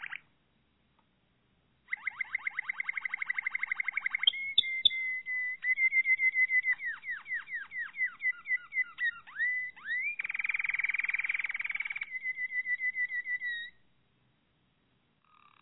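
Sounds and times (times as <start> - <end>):
Malinois Waterslager canary singing a clear whistled song: 0.0 - 0.2, 1.9 - 13.8.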